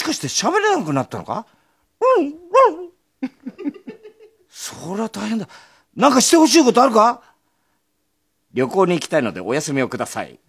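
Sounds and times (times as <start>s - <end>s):
speech: 0.1s - 1.6s, 2.2s - 2.4s, 4.7s - 7.3s, 8.5s - 10.4s
person imitating a dog with yelps, yips and whimpers: 2.0s - 4.0s
laughter: 3.2s - 4.4s.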